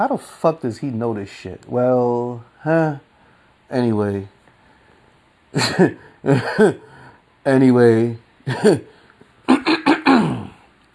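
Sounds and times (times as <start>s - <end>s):
speech: 0.0s - 3.1s, 3.7s - 4.4s, 5.5s - 9.0s
person clearing throat: 5.6s - 6.8s, 9.5s - 10.7s.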